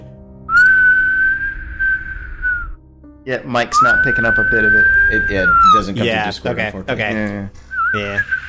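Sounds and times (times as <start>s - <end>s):
shrill warbling human whistle: 0.5s - 2.8s, 3.7s - 5.9s, 7.7s - 8.4s
speech: 3.2s - 8.4s.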